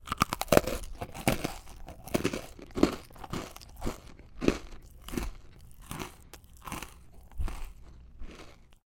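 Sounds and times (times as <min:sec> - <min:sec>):
person eating a cookie: 0:00.0 - 0:08.8.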